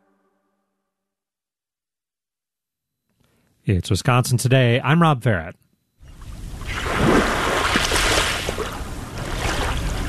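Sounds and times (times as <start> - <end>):
speech: 3.7 - 5.6
waves lapping onto a sand beach on the Lake Michigan shore: 6.4 - 10.0.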